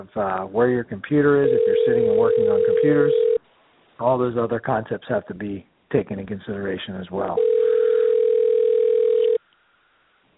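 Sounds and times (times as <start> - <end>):
speech: 0.0 - 3.3, 4.0 - 7.5
telephone dial tone: 1.5 - 3.4, 7.4 - 9.4.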